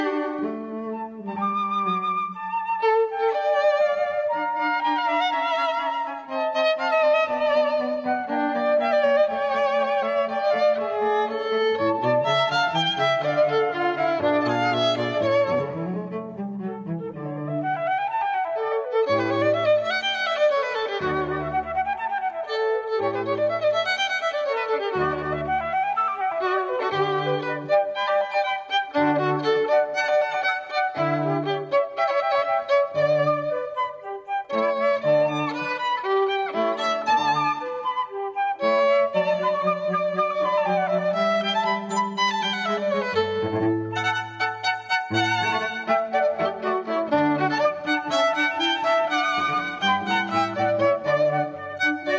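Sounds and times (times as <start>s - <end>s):
flute trio playing: 0.1s - 52.1s.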